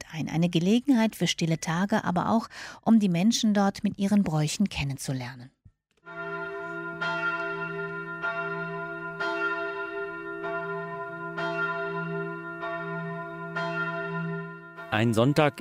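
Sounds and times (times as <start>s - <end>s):
speech: 0.1s - 5.6s, 15.0s - 15.5s
midday bell of an old pilgrimage church ringing over a snow-covered village in Maria Alm: 6.0s - 15.5s.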